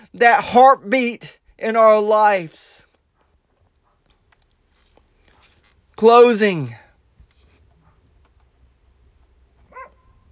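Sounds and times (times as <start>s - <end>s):
speech: 0.1s - 2.7s, 6.0s - 6.8s
dog wearing a shock collar barking at home: 3.2s - 4.1s, 7.8s - 8.1s, 9.6s - 10.3s.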